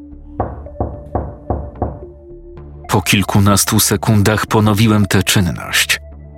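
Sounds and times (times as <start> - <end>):
firm knocks on a wooden door at the top of stone steps: 0.4 - 2.2
speech: 2.9 - 6.0.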